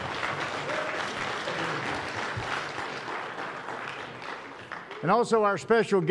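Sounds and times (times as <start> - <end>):
congregation applauding: 0.0 - 5.6
speech: 5.0 - 6.0.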